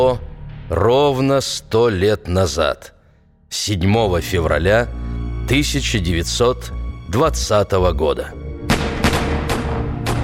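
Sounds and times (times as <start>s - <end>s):
speech: 0.0s - 8.4s
rifle shots from a firing squad: 8.7s - 10.2s.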